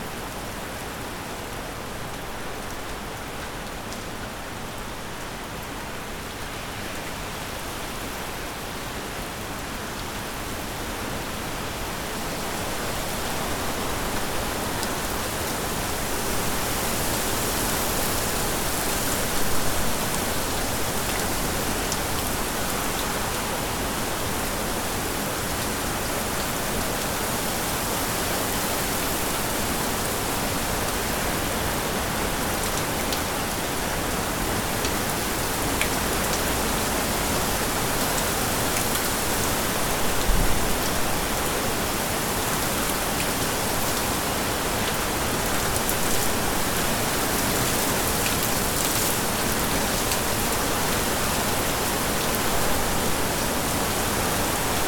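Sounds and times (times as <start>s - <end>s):
rainfall: 0.0s - 54.8s.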